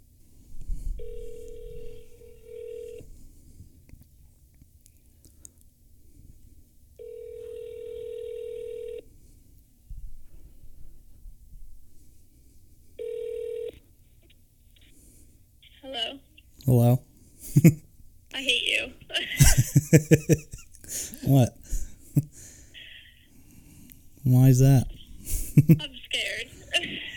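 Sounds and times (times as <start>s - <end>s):
low hum: 0.0s - 27.1s
telephone ringing tone heard through a phone held up to a microphone: 1.0s - 3.0s, 7.0s - 9.0s, 13.0s - 13.8s
speech: 17.6s - 17.8s, 19.9s - 20.6s, 21.3s - 21.6s, 25.7s - 26.0s
laughter: 19.2s - 20.8s, 25.3s - 25.8s.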